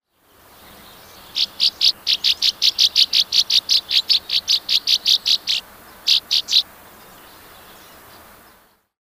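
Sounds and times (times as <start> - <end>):
Northern Rough-winged Swallow Stelgidopteryx serripennis calling: 1.2 - 8.0.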